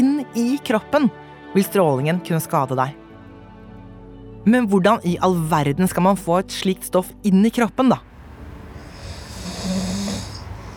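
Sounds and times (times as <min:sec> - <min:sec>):
speech: 0:00.2 - 0:03.0, 0:04.4 - 0:08.1
person snoring: 0:08.7 - 0:10.7.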